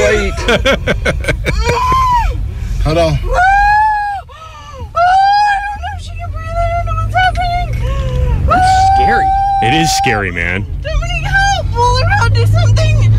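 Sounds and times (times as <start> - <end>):
laughter: 0.0 - 2.2
low rumble of a moving car: 0.0 - 13.1
speech: 0.2 - 1.8, 2.8 - 3.5, 9.6 - 11.0
woman screaming while giving birth in a moving car: 1.5 - 2.4, 3.3 - 5.6, 8.5 - 10.0.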